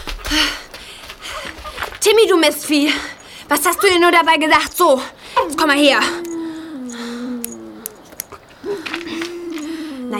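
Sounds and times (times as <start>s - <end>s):
speech: 2.0s - 6.3s
dog whining: 3.5s - 4.3s, 6.0s - 9.8s
soft clicks: 7.4s - 8.4s.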